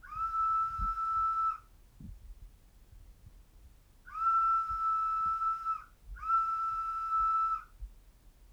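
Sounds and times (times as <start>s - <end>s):
whistle in a courtyard: 0.0s - 1.6s, 4.1s - 7.7s.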